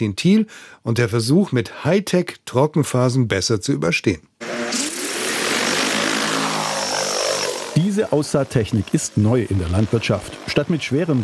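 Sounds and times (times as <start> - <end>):
speech: 0.0 - 4.8, 8.0 - 11.2
agricultural drone propeller buzz over ripe summer barley in the Swabian Alb: 4.4 - 11.2.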